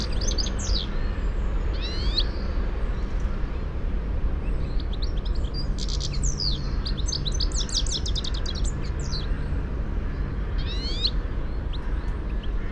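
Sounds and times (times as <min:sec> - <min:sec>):
European goldfinch calls: 0:00.0 - 0:01.0, 0:05.0 - 0:09.3, 0:10.6 - 0:12.7
low rumbling background noise: 0:00.0 - 0:12.7.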